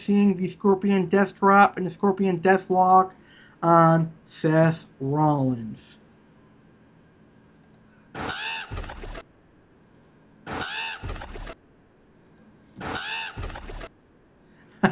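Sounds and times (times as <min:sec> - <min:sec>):
speech: 0:00.1 - 0:05.9
crows cawing: 0:08.2 - 0:09.1, 0:10.5 - 0:11.4, 0:12.8 - 0:13.8.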